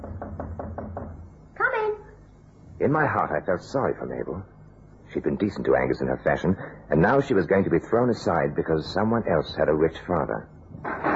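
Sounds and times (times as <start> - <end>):
firm knocking on an apartment door: 0.0 - 1.2
speech: 2.8 - 4.5, 5.1 - 10.8.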